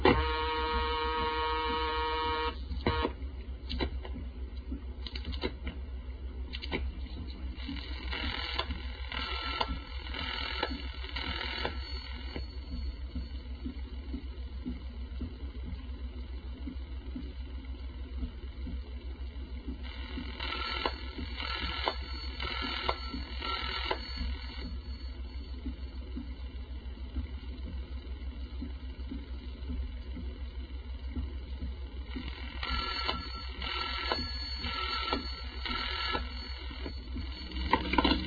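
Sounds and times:
steady hum on narrow tinny telephone-line audio: 0.0s - 38.2s
telephone ring pattern of four short rings: 8.2s - 13.4s, 19.9s - 25.6s, 32.3s - 38.2s.

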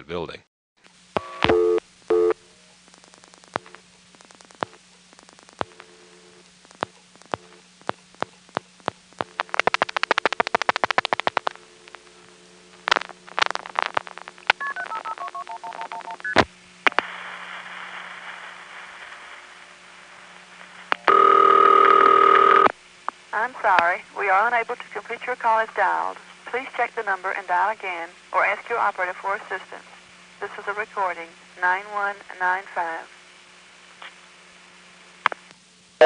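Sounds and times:
speech: 0.0s - 0.5s, 23.9s - 33.2s
telephone ringing tone on a step-by-step exchange line in Raleigh: 1.2s - 2.4s, 14.6s - 16.4s, 21.1s - 22.7s
loud steady telephone tone: 1.2s - 2.5s, 5.6s - 7.6s, 9.2s - 17.4s, 21.0s - 22.8s.

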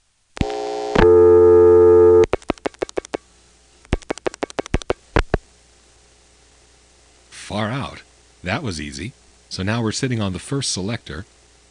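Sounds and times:
steady telephone tone: 0.4s - 2.3s
speech: 8.4s - 11.4s.

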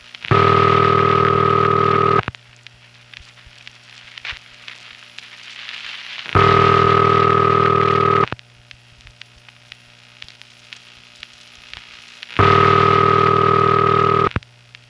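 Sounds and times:
buzzy telephone ringing signal through a phone line: 0.3s - 2.2s, 6.4s - 8.3s, 12.4s - 14.3s.

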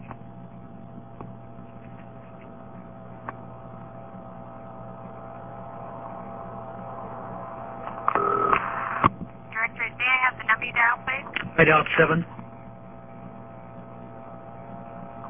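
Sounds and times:
humming telephone line: 0.0s - 15.2s
telephone ringing tone: 8.1s - 8.7s
intercept operator speaking on a telephone line: 9.6s - 12.3s
speech: 11.6s - 12.4s.

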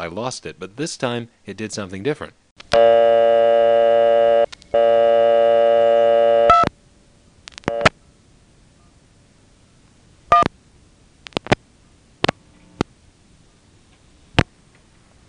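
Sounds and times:
speech: 0.0s - 3.4s
loud steady electronic payphone line tone: 2.8s - 6.7s, 7.7s - 7.9s.

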